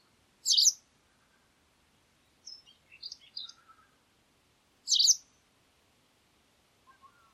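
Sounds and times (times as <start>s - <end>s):
bird chirps: 0.0s - 0.8s, 2.4s - 3.9s, 4.9s - 5.3s
bird twittering: 0.4s - 0.8s, 2.5s - 3.9s, 4.9s - 5.2s.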